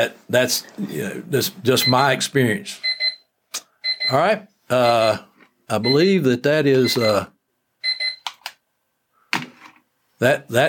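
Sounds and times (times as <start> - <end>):
speech: 0.0 - 2.9, 3.5 - 7.3, 10.2 - 10.6
alarm beeping with short high electronic beeps: 2.8 - 3.2, 3.8 - 4.2, 6.8 - 7.2, 7.8 - 8.3.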